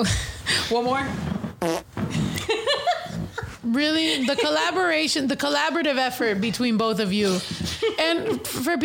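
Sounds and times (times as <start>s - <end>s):
speech: 0.0s - 3.0s, 3.6s - 8.8s
loud fart noises: 1.1s - 2.4s.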